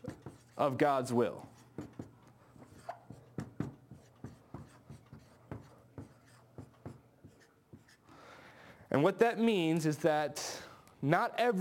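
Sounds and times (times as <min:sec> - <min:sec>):
handwritten strokes scratching across a surface: 0:00.0 - 0:00.8, 0:01.4 - 0:08.0
speech: 0:00.6 - 0:01.5, 0:09.0 - 0:11.5.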